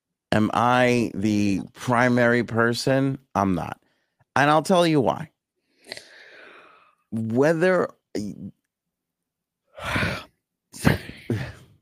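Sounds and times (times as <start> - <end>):
speech: 0.3 - 3.8, 4.4 - 5.3, 7.1 - 8.6, 9.8 - 11.5
person yawning with a groaning voiced exhale: 9.8 - 11.6
short vocal sound: 9.8 - 11.6.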